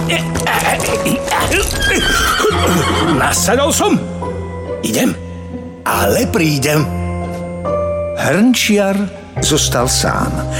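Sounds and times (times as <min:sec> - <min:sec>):
speech: 0:00.1 - 0:04.2, 0:04.8 - 0:05.2, 0:05.8 - 0:07.0, 0:07.6 - 0:10.5
horse neighing as a man mounts it: 0:01.3 - 0:03.5.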